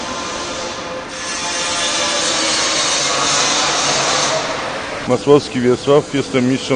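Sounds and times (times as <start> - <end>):
carpenters sawing or sanding wood in a tram modernization workshop: 0.1 - 4.9
speech: 5.1 - 6.7.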